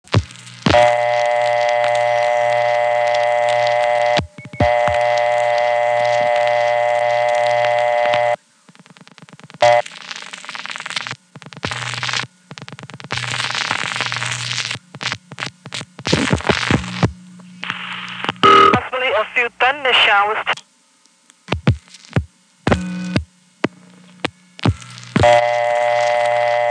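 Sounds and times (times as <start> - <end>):
crackling bursts on a telephone line: 0.0 - 26.7
steady electronic telephone tones: 0.1 - 8.4, 18.4 - 19.0, 21.5 - 26.7
telephone line clicking and switching through: 0.8 - 8.4.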